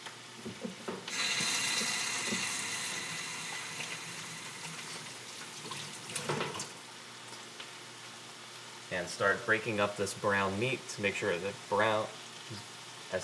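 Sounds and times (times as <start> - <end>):
hands being washed under a running tap: 0.9 - 6.8
speech: 9.0 - 13.2.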